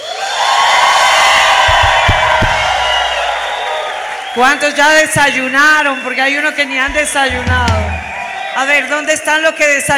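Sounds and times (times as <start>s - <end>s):
church service audience shouting and cheering with joy: 0.0s - 9.9s
dull thumps: 1.6s - 3.5s, 6.9s - 8.3s
speech: 4.4s - 7.9s, 8.6s - 9.9s.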